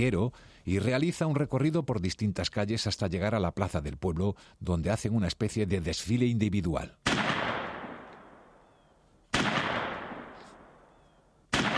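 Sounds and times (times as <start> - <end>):
speech: 0.0 - 7.2
shotgun blasts fired into the air at a village festival: 7.0 - 8.6, 9.3 - 11.7.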